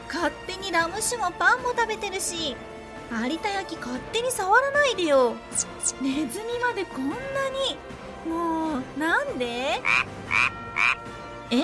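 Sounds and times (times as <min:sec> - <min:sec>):
speech: 0:00.1 - 0:11.6
rising chirp: 0:05.5 - 0:06.0
frog croaking: 0:09.8 - 0:11.1.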